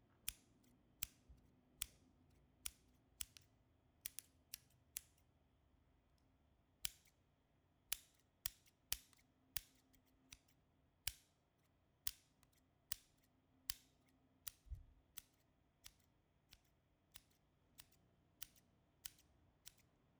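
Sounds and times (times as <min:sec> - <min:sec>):
scissors: 0:01.8 - 0:05.2, 0:07.9 - 0:11.2, 0:12.1 - 0:20.1.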